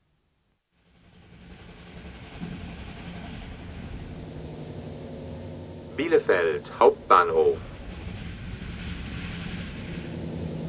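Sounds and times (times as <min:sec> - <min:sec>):
train travelling along the rails toward Hannover: 0:00.8 - 0:10.6
speech: 0:06.0 - 0:07.7.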